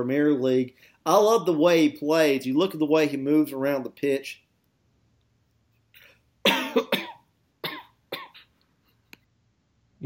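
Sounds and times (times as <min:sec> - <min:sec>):
speech: 0:00.0 - 0:04.4
harsh coughing fit: 0:06.4 - 0:08.5.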